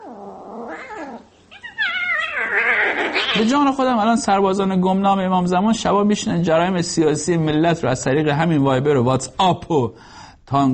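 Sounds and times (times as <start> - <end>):
cat yowling: 0.0 - 3.5
speech: 3.4 - 10.7.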